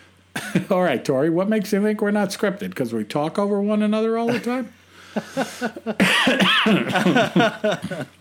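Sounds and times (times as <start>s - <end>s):
person coughing in short harsh bursts: 0.4s - 0.7s, 5.6s - 8.1s
speech: 0.4s - 8.1s
laughter: 4.3s - 8.1s.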